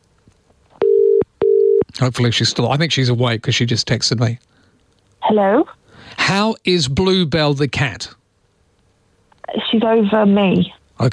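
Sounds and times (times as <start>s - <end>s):
telephone line tone while placing a call: 0.8s - 1.8s
speech: 2.0s - 4.5s, 5.3s - 8.2s, 9.5s - 11.1s.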